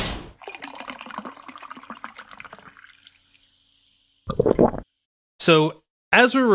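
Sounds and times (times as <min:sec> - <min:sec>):
fizzing drink pouring into a glass: 0:00.4 - 0:04.8
speech: 0:05.4 - 0:06.5.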